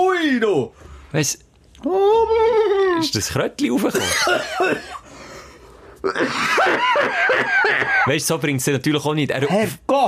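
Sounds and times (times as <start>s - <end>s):
speech: 0.3s - 5.0s, 6.0s - 10.0s
person coughing and spluttering after choking: 3.9s - 5.0s, 6.0s - 6.6s
laughter: 6.2s - 8.1s.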